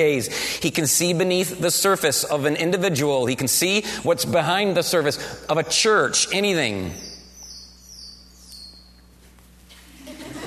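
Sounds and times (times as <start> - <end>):
speech: 0.0 - 7.1
steady low hum: 0.0 - 10.4
faint high-pitched bat chirps: 6.8 - 9.1
laughter: 9.9 - 10.4.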